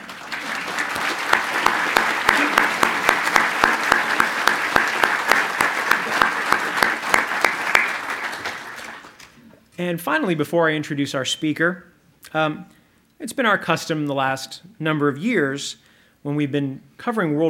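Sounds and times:
audience applause: 0:00.0 - 0:09.3
speech: 0:09.8 - 0:17.4.

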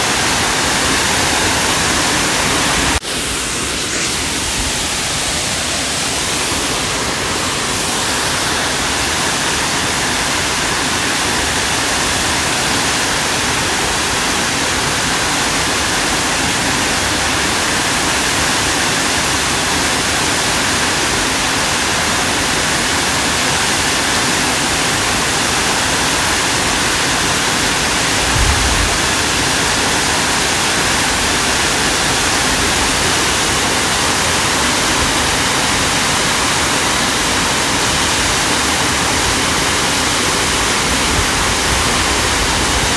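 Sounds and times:
Foresta Falls waterfall roaring in Yosemite National Park: 0:00.0 - 0:42.9
low thump: 0:28.2 - 0:29.3.

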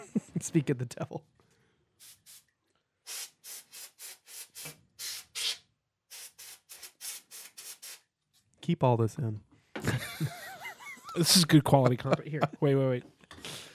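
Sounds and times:
laughter: 0:00.0 - 0:00.5, 0:09.8 - 0:12.7
speech: 0:00.4 - 0:01.4, 0:08.7 - 0:09.5, 0:10.2 - 0:10.4, 0:11.2 - 0:13.2
canned air spray can hissing while dusting a keyboard: 0:02.0 - 0:02.5, 0:03.1 - 0:08.1.

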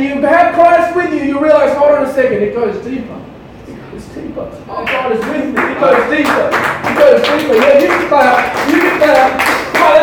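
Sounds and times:
man speaking loudly in a raised voice: 0:00.0 - 0:03.3, 0:03.9 - 0:10.0
speech: 0:01.3 - 0:03.4, 0:04.0 - 0:10.0
crowd clapping: 0:04.9 - 0:10.0.

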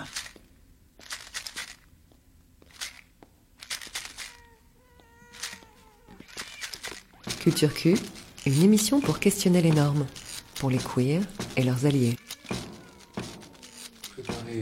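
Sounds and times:
sharp crunchy bursts of noise: 0:01.0 - 0:01.9, 0:02.7 - 0:04.4, 0:05.3 - 0:14.4
cat meowing in drawn-out wavering cries: 0:04.0 - 0:08.2, 0:09.7 - 0:14.3
speech: 0:07.4 - 0:12.2.

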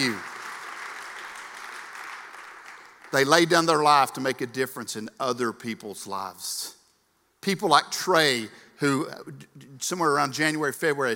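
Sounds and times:
speech: 0:00.0 - 0:00.3, 0:03.1 - 0:06.8, 0:07.4 - 0:11.1
crowd applauding: 0:00.0 - 0:03.7.

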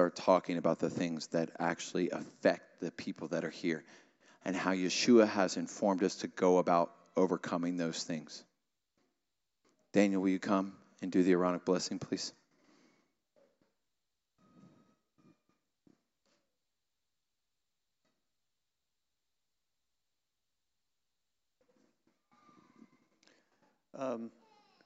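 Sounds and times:
speech: 0:00.0 - 0:08.5, 0:09.9 - 0:12.4, 0:24.0 - 0:24.4
young child crying and whimpering after a scorpion sting: 0:24.4 - 0:24.8.

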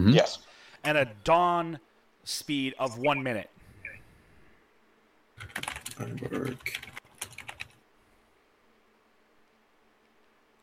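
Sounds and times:
speech: 0:00.0 - 0:03.6, 0:05.4 - 0:07.0
crisp key clicks on a computer keyboard: 0:05.4 - 0:07.8.

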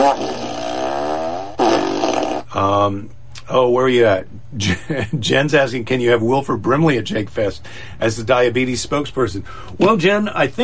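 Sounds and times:
fart sound effect from a fart machine: 0:00.0 - 0:02.5
speech: 0:02.6 - 0:10.6.

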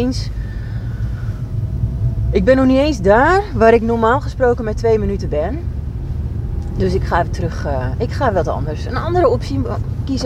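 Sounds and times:
speech: 0:00.0 - 0:00.4, 0:02.3 - 0:05.8, 0:06.8 - 0:10.2
low rumble in the cabin of a moving car: 0:00.0 - 0:10.2.

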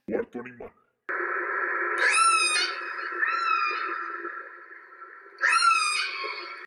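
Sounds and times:
whale call: 0:01.9 - 0:06.6.

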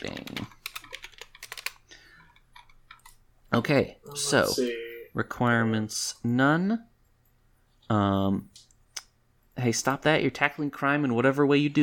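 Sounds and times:
rapid typing on a computer keyboard: 0:00.0 - 0:03.2
speech: 0:03.6 - 0:06.9, 0:07.9 - 0:08.7, 0:09.6 - 0:11.8.

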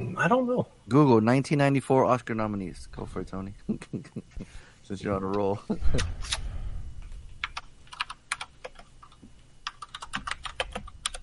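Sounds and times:
low hum: 0:00.0 - 0:11.2
speech: 0:00.2 - 0:04.3, 0:04.9 - 0:06.4
typing on a computer keyboard: 0:07.4 - 0:11.2.

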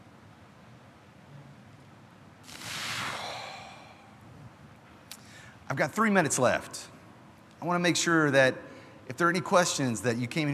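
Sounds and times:
huge deep breath drawn in during a wellness session: 0:02.5 - 0:04.3
speech: 0:05.7 - 0:06.9, 0:07.6 - 0:10.5.

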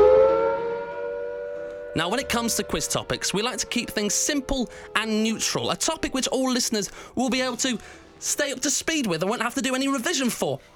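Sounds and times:
air raid warning siren wailing: 0:00.0 - 0:08.3
speech: 0:02.0 - 0:10.7.

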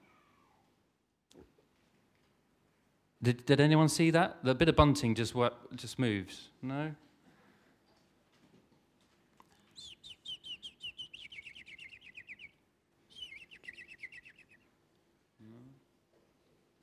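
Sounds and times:
speech: 0:03.2 - 0:07.0
fake bird chirping sound effect: 0:09.8 - 0:12.5, 0:13.2 - 0:14.6.

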